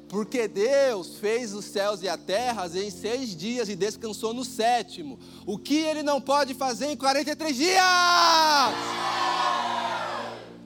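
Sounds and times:
speech: 0.1 - 9.2
audience shouting together: 8.7 - 10.5.

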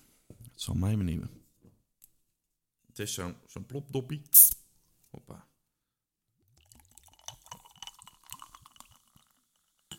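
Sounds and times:
speech: 0.6 - 1.4, 3.0 - 5.5
alcohol-free gin tonic pouring into a glass with ice: 6.4 - 9.9.

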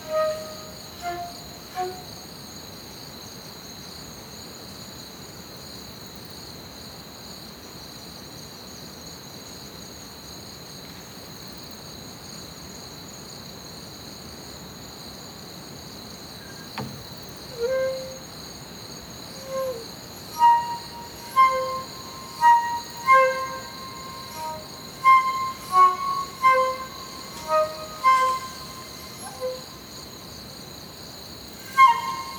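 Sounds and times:
short clear chirping calls: 0.0 - 2.0, 19.3 - 29.8, 31.7 - 32.3
crickets trilling through the night: 0.0 - 2.2, 16.4 - 30.5, 31.4 - 32.3.

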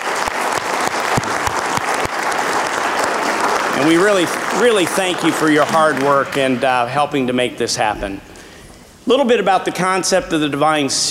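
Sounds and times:
audience round of applause: 0.0 - 6.8
speech: 3.8 - 8.3, 9.0 - 11.0.

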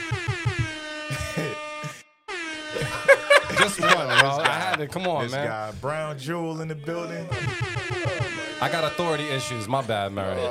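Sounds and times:
loud blaring air horn blasts: 0.0 - 4.8, 7.3 - 10.4
laughter: 2.7 - 5.7
speech: 3.7 - 10.4.

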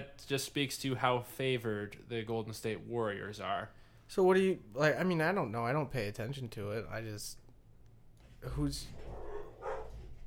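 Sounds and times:
speech: 0.0 - 7.4, 8.4 - 9.2
low hum: 0.0 - 10.2
dogs barking and whining in another room: 9.0 - 10.2.

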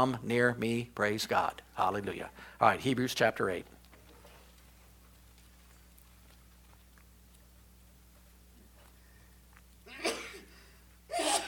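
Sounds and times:
speech: 0.0 - 3.8
breathy sneeze: 9.9 - 10.5, 11.1 - 11.4.

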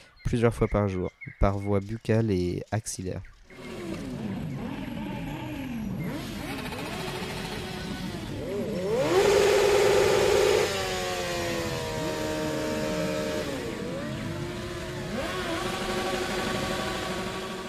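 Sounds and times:
speech: 0.3 - 3.3
motorcycle engine revving during burnouts inside an apartment: 3.5 - 17.6.

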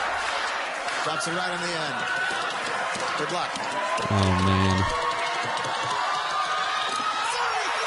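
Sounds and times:
show audience cheering and screaming as a contestant wins: 0.0 - 7.8
speech: 1.0 - 6.2
overlapping excited voices and shouts: 4.0 - 5.0, 7.0 - 7.8.

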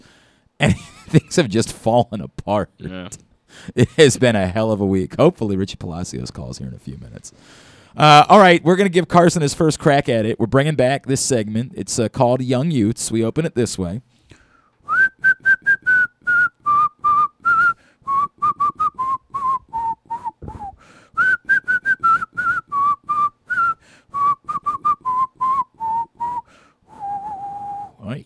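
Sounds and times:
speech: 0.6 - 14.1
person whistling a bouncy tune: 14.9 - 28.0.

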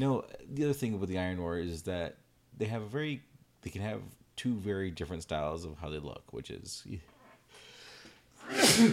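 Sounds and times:
speech: 0.0 - 7.6, 8.4 - 8.9
sneeze: 8.4 - 8.9.

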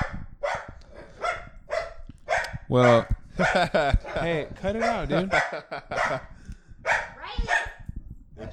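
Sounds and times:
dog barking at a balloon: 0.0 - 3.9, 4.8 - 6.3, 6.9 - 7.8
speech: 2.7 - 6.3
laughter: 3.4 - 4.5, 5.1 - 6.3.

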